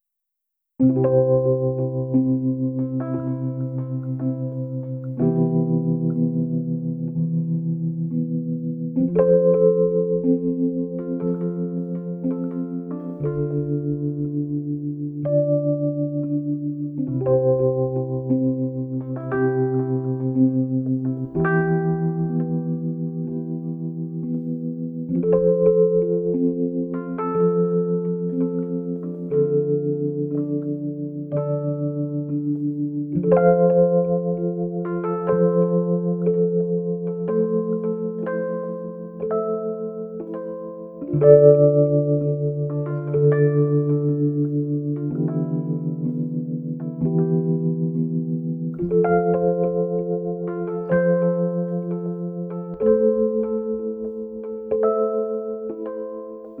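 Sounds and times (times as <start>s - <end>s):
electric piano duet: 0.8s - 56.5s.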